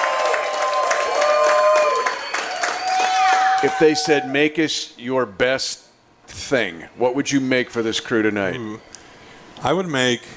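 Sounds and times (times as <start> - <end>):
large sellout live audience clapping and cheering: 0.0 - 4.3
audience members shouting and whooping: 0.0 - 4.4
speech: 3.6 - 8.9, 9.6 - 10.3.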